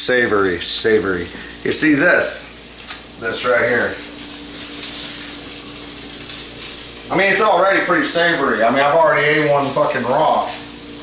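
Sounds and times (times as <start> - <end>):
speech: 0.0 - 2.5, 3.2 - 4.0, 7.1 - 11.0
butter sizzling in a hot pan: 0.0 - 11.0.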